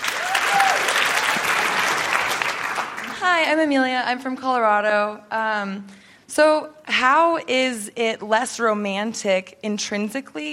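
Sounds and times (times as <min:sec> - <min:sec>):
live audience applause: 0:00.0 - 0:03.4
speech: 0:03.2 - 0:10.5.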